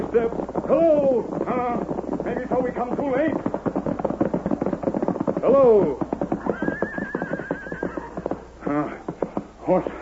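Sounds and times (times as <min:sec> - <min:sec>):
horse hoofbeats clip-clopping: 0:00.0 - 0:10.0
speech: 0:00.1 - 0:03.6, 0:09.7 - 0:10.0
horse neighing: 0:05.7 - 0:09.2.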